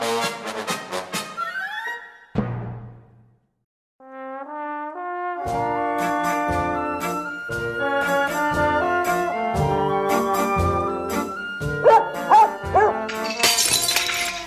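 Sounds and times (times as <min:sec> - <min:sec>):
music: 0:00.0 - 0:02.8, 0:04.0 - 0:14.4
dog barking: 0:11.8 - 0:13.1
glass shattering: 0:12.9 - 0:14.4.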